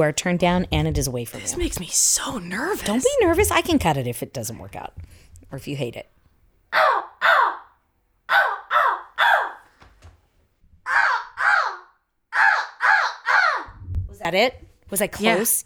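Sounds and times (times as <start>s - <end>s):
speech: 0.0s - 6.8s, 14.3s - 15.6s
person imitating crow caws: 6.7s - 9.7s, 10.9s - 13.8s.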